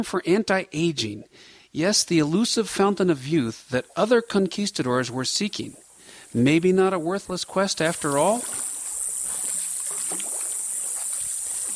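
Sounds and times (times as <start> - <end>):
speech: 0.0 - 8.7
constant high-pitched drone of cicadas: 3.4 - 11.7
small canoe paddle strokes in still jungle stream water: 3.7 - 11.7.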